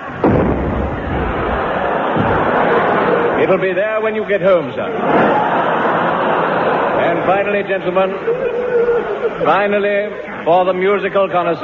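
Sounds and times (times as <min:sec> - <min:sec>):
cannon firing a shell: 0:00.0 - 0:02.9
laughter: 0:00.0 - 0:10.7
speech: 0:03.5 - 0:05.7, 0:07.0 - 0:08.5, 0:09.1 - 0:11.6.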